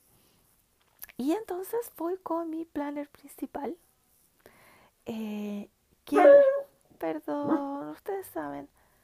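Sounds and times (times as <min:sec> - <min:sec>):
speech: 0:01.2 - 0:03.9, 0:05.0 - 0:08.8
dog barking: 0:06.1 - 0:06.7.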